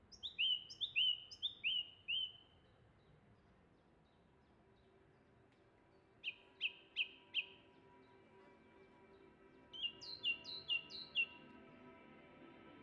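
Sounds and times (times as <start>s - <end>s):
song thrush singing in Oxfordshire England: 0.1s - 2.4s, 9.7s - 11.4s.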